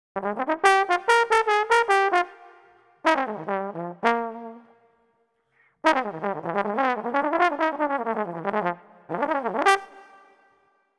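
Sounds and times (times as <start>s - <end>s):
jazz trombone in F minor at 75 bpm: 0.2s - 4.6s, 5.9s - 10.1s.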